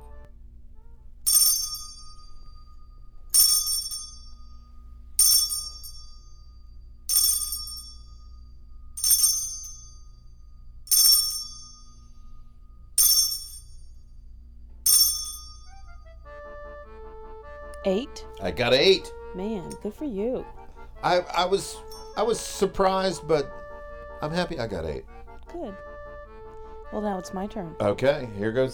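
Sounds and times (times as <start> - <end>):
faint low hum: 0.0 - 28.7
bright metallic chime ringing: 1.3 - 8.2, 9.0 - 12.4, 13.0 - 14.0, 14.9 - 16.0, 21.7 - 23.6
speech: 17.8 - 23.6, 24.2 - 25.9, 26.9 - 28.7.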